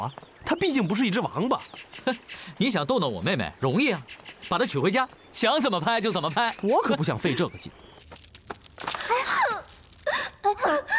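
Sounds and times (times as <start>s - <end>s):
speech: 0.0s - 8.1s
woman crying with wailing sobs: 9.1s - 10.9s.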